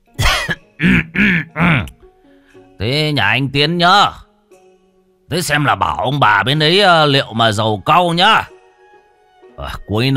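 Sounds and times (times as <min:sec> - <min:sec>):
old man clearing his throat: 0:00.2 - 0:02.0
old man coughing: 0:00.2 - 0:02.0
speech: 0:02.8 - 0:04.2, 0:05.3 - 0:08.5, 0:09.6 - 0:10.1.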